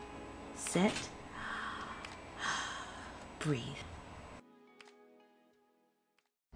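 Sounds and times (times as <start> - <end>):
speech: 0.7 - 1.2, 3.4 - 3.9
deep breath drawn and released: 1.3 - 3.3.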